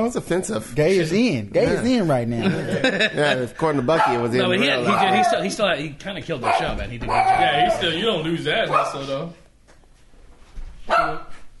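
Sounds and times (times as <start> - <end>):
speech: 0.0 - 9.4, 10.9 - 11.3
laughter: 2.4 - 5.4
dog barking as someone comes in the door: 4.0 - 4.3, 6.4 - 7.7, 8.7 - 9.0, 10.9 - 11.4.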